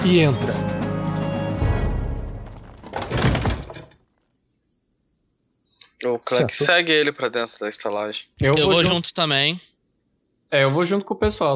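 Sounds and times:
speech: 0.0s - 0.8s, 6.3s - 9.7s, 10.5s - 11.5s
heavy door groaning and rumbling open: 1.5s - 3.9s
faint crickets chirping in night air: 1.7s - 11.5s.

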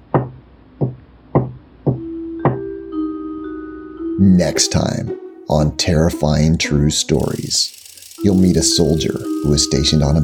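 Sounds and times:
firm knocking from inside a closet: 0.1s - 2.7s
speech: 4.2s - 10.2s
low sustained drone: 7.2s - 10.2s.

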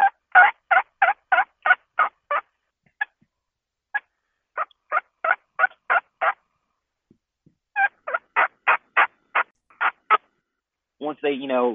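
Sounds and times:
turkey hen soft tree yelps: 0.0s - 3.2s, 4.0s - 6.4s, 7.8s - 10.3s
speech: 11.1s - 11.7s.

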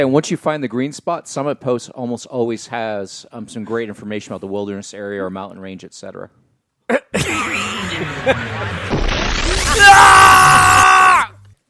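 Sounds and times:
speech: 0.0s - 7.4s, 8.0s - 9.0s
laughter: 7.2s - 9.0s
screaming and yelling: 9.5s - 11.4s.

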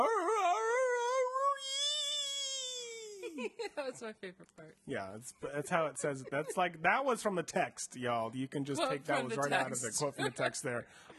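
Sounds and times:
voice imitating a blood-curdling howl or scream: 0.0s - 3.2s
speech: 3.4s - 11.1s
laughter: 5.7s - 6.8s, 8.8s - 10.8s.

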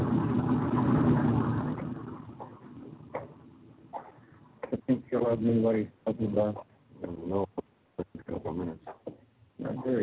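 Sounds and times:
truck engine idling: 0.0s - 4.7s
speech: 5.2s - 7.6s, 9.8s - 10.0s.

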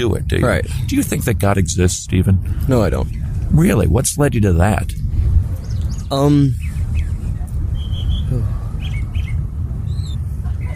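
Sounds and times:
speech: 0.0s - 5.0s, 6.1s - 6.8s
steady low outdoor rumble: 0.0s - 10.7s
birds singing and chirping outdoors: 2.4s - 4.0s, 4.9s - 10.7s.

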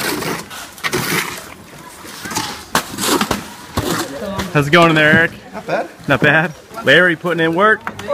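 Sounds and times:
wet cement sloshing and slapping as it's dumped for laying cement: 0.0s - 5.4s
speech: 4.5s - 8.1s.

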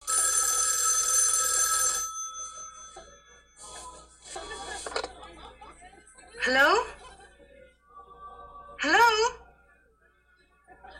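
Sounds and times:
telephone bell ringing: 0.0s - 3.6s
laughter: 3.6s - 7.8s, 10.6s - 10.9s
speech: 6.5s - 7.0s.

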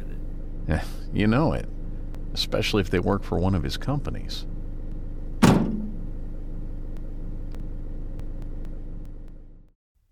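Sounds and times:
car engine idling: 0.0s - 9.7s
speech: 0.7s - 4.5s
car door slamming: 5.4s - 6.1s.

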